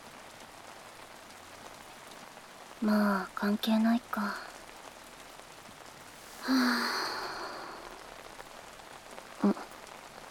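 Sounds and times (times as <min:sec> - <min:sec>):
heavy rain falling steadily: 0:00.0 - 0:10.2
speech: 0:02.8 - 0:04.5, 0:06.4 - 0:07.1.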